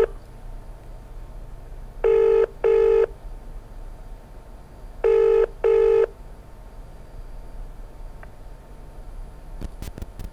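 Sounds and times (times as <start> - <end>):
telephone ringback tone through the earpiece: 2.0 - 3.1, 5.0 - 6.1.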